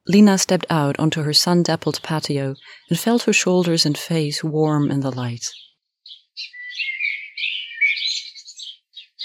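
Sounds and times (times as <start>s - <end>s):
speech: 0.1s - 5.6s
birds singing in trees: 1.4s - 9.2s.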